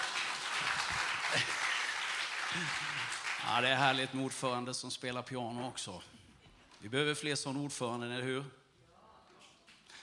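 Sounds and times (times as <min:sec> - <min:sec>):
crowd applauding with many hands clapping: 0:00.0 - 0:04.2
speech: 0:00.6 - 0:01.6, 0:02.5 - 0:06.2, 0:06.8 - 0:08.6.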